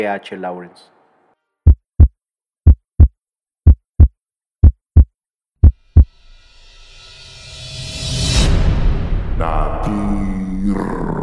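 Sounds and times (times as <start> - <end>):
speech: 0.0 - 0.9, 9.4 - 11.2
heartbeat sound effect double thumps: 1.6 - 6.1.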